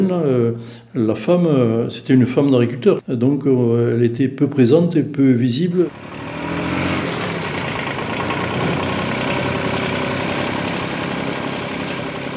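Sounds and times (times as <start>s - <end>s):
speech: 0.0s - 6.2s
tractor engine idling: 5.9s - 12.3s.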